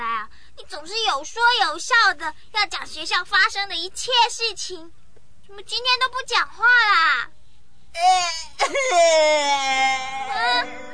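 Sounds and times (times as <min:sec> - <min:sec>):
speech: 0:00.8 - 0:10.9
child crying: 0:08.0 - 0:10.9.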